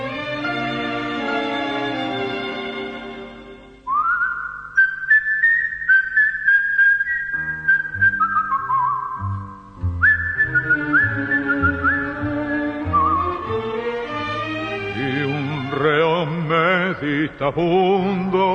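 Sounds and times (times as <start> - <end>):
instrumental backing music: 0.0 - 4.0, 6.9 - 18.5
person whistling a brooding prisoner's tune: 3.9 - 9.4, 10.0 - 13.4
speech: 17.5 - 18.0.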